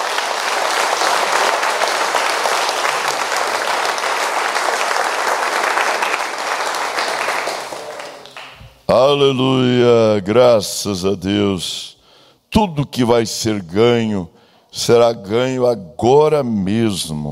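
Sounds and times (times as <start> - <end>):
audience applauding: 0.0 - 8.8
speech: 8.9 - 11.9, 12.6 - 17.3.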